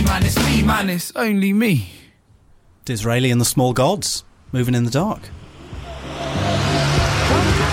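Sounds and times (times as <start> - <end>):
speech: 0.7 - 2.0, 2.9 - 5.4
car driving by: 5.2 - 7.7.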